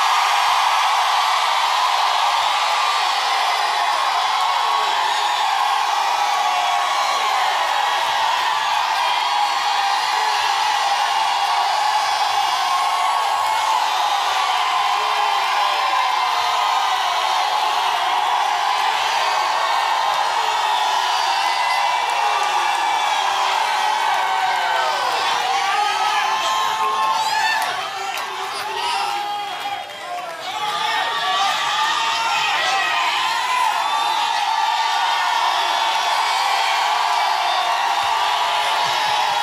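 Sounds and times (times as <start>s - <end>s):
large crowd screaming and whooping: 0.0s - 39.4s.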